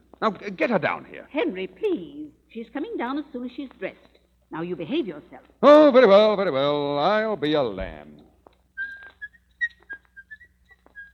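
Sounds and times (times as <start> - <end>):
speech: 0.2 - 8.3
man whistling a jaunty tune: 8.8 - 11.1.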